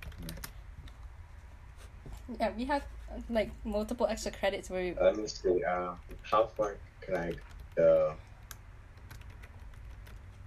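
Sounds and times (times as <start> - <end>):
typing on a computer keyboard: 0.0 - 1.1, 7.1 - 10.4
low hum: 0.0 - 10.4
speech: 2.3 - 8.3.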